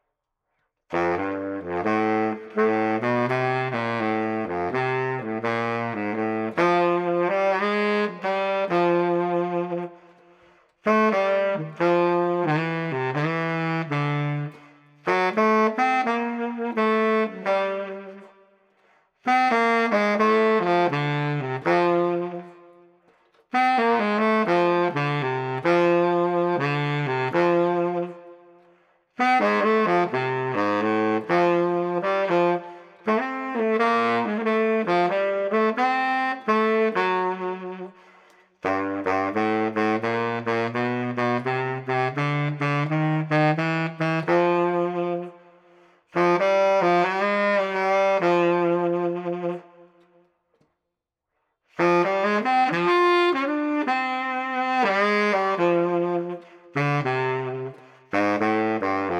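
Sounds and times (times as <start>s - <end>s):
mellow baritone saxophone on the street: 0.9s - 50.3s, 51.7s - 59.1s.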